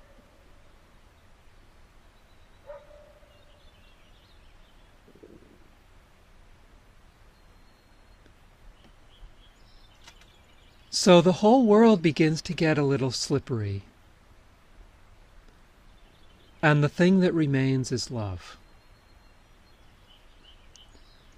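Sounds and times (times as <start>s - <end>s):
steady hiss of outdoor noise: 0.0s - 21.3s
faint dogs barking: 2.6s - 3.6s
speech: 11.0s - 13.9s, 16.6s - 18.6s.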